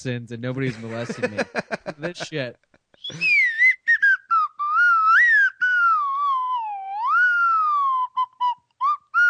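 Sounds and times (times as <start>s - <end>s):
speech: 0.0s - 3.4s
laughter: 0.7s - 2.4s
slide whistle playing a wavering gliding tune: 3.0s - 9.2s.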